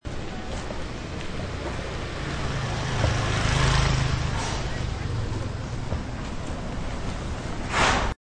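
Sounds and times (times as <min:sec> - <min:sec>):
car: 0:00.2 - 0:07.7.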